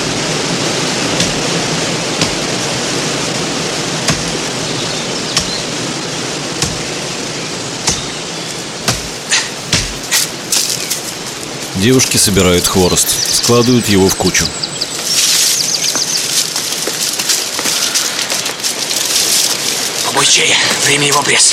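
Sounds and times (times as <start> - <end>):
waterfall rushing in a steady dense roar: 0.0 - 21.5
someone chopping a tree: 4.0 - 4.4, 6.6 - 6.9, 7.8 - 8.2, 8.8 - 10.3
speech: 11.8 - 14.7, 20.4 - 21.5.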